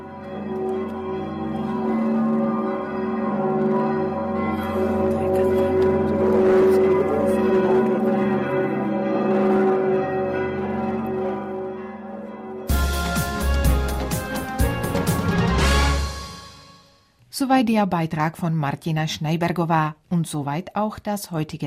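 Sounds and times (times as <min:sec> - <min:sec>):
full peal of new church bells ringing after a church service: 0:00.0 - 0:16.9
speech: 0:17.5 - 0:21.6.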